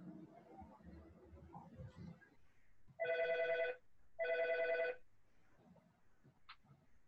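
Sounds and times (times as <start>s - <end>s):
telephone ringing: 3.0s - 5.0s.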